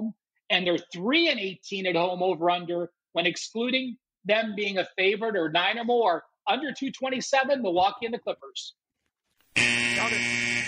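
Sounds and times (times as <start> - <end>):
speech: 0.5 - 8.8
harsh arena-style basketball game buzzer: 9.5 - 10.6.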